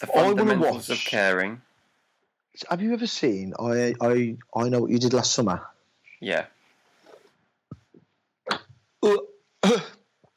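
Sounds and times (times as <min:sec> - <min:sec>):
speech: 0:00.0 - 0:01.7, 0:02.6 - 0:06.6, 0:08.5 - 0:10.0
person coughing after tea went down the wrong pipe: 0:09.0 - 0:10.0
throat clearing after tea went down the wrong pipe: 0:09.0 - 0:10.0.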